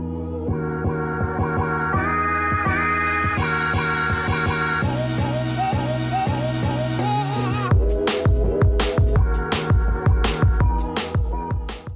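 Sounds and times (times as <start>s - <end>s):
loud upbeat instrumental intro music with rhythmic chords: 0.0s - 11.9s.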